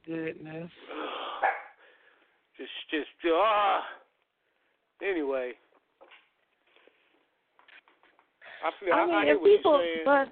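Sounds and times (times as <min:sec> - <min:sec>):
speech: 0:00.1 - 0:01.1, 0:02.6 - 0:04.0, 0:05.0 - 0:05.6, 0:08.6 - 0:10.3
dog barking: 0:01.4 - 0:01.8.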